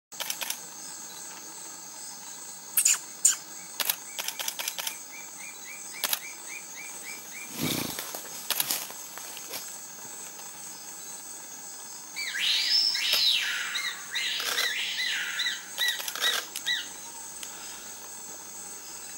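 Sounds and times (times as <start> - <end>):
chestnut-crowned becard singing: 0.8 - 8.0, 10.6 - 19.1.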